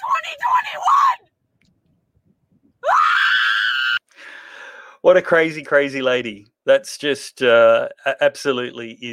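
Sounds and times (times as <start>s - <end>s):
woman screaming hysterically while driving a car: 0.0s - 1.2s, 2.8s - 4.0s
speech: 0.3s - 1.2s, 5.0s - 9.1s.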